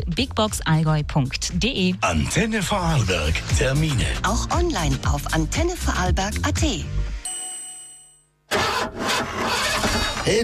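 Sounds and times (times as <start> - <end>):
speech: 0.0 - 7.0, 10.3 - 10.4
electronic chime: 7.2 - 8.3
rough car engine cranking and failing to start: 8.5 - 10.4.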